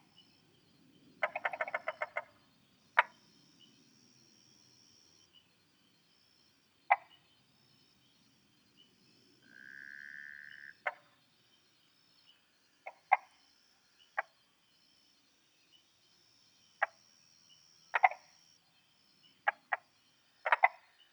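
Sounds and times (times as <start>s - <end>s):
tree frog clicking calls in Taiwan: 1.2s - 3.3s, 6.9s - 7.2s, 9.4s - 11.2s, 12.8s - 13.5s, 14.1s - 14.4s, 16.7s - 18.6s, 19.4s - 21.0s.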